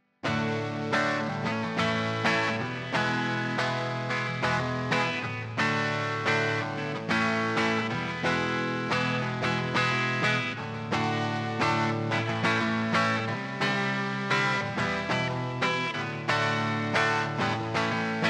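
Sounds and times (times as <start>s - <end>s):
guitar: 0.0s - 18.2s.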